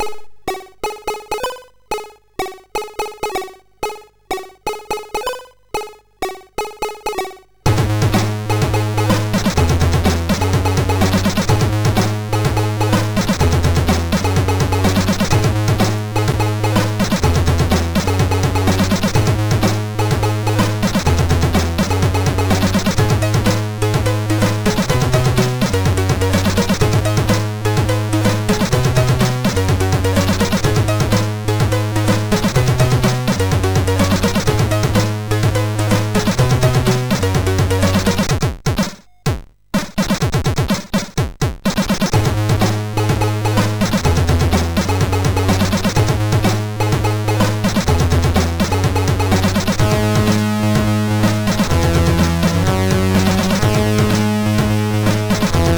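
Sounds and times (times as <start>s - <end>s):
rap music on MOS6581R3 SID sound chip: 0.0s - 55.7s.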